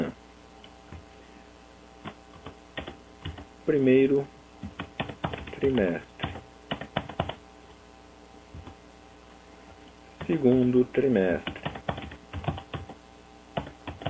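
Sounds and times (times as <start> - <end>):
clicky keystrokes on a computer keyboard entering data: 2.3 - 3.5, 4.6 - 7.4, 11.4 - 13.0, 13.6 - 14.0
speech: 3.7 - 4.4, 5.6 - 6.1, 10.3 - 11.6.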